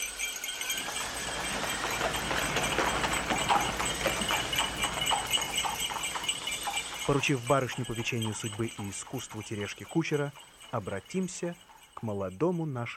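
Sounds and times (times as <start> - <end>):
bright jingling hiss of a horse-drawn sleigh: 0.0 - 12.9
horses drawing a sleigh along a road at a fast gallop: 0.0 - 12.9
speech: 7.1 - 12.9.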